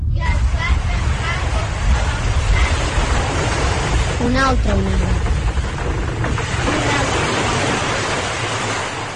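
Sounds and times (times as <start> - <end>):
deep constant roar of rushing water: 0.2 - 9.1
huge ocean wave crashing onto beach: 0.2 - 9.1.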